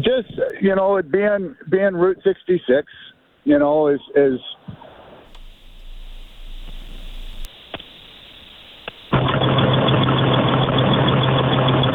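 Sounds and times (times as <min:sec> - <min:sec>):
speech: 0:00.0 - 0:04.8
RV engine idling: 0:05.3 - 0:11.9.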